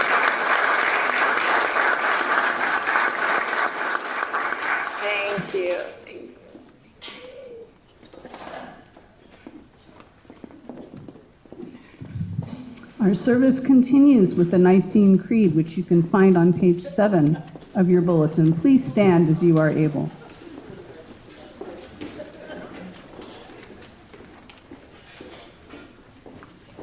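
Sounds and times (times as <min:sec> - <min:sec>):
audience applause at a church service: 0:00.0 - 0:05.6
faint room noises: 0:05.0 - 0:26.8
speech: 0:13.0 - 0:20.2.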